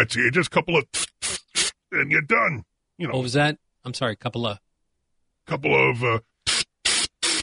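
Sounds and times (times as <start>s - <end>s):
speech: 0.0s - 1.1s, 1.9s - 4.6s, 5.5s - 6.3s
person imitating an aerosol spray can with their mouth: 0.8s - 1.8s, 6.4s - 7.4s.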